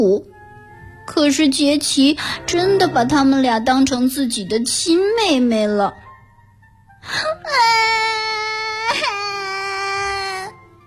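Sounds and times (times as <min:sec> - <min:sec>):
speech: 0:00.0 - 0:00.4, 0:01.1 - 0:06.0, 0:07.0 - 0:08.3
child crying: 0:07.2 - 0:10.6.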